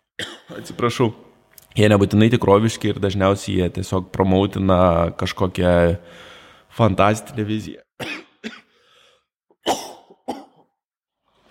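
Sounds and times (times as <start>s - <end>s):
person choking and coughing: 0.2s - 0.8s, 8.0s - 8.8s, 9.6s - 10.8s
speech: 0.2s - 8.6s.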